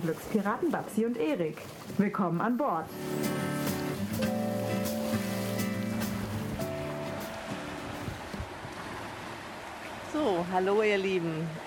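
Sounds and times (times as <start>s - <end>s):
speech: 0.0s - 3.6s, 10.2s - 11.6s
sustained musical tones: 2.8s - 8.3s
ocean surf on the Canary Islands: 2.9s - 10.8s.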